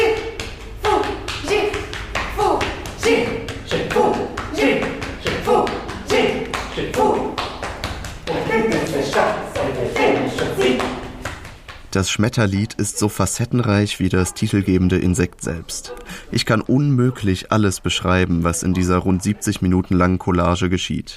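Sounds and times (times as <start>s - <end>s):
performers chanting rhythmic nonsense syllables in an invented language: 0.0s - 11.2s
performers patting each other's backs: 0.0s - 12.0s
speech: 12.0s - 21.1s.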